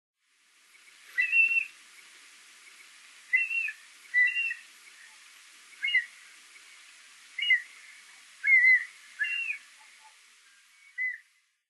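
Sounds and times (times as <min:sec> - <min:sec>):
background hiss: 0:00.2 - 0:11.6
mountain hawk-eagle whistled call notes in Tottori: 0:01.2 - 0:01.7, 0:03.3 - 0:04.6, 0:05.8 - 0:06.1, 0:07.4 - 0:07.7, 0:08.4 - 0:09.6.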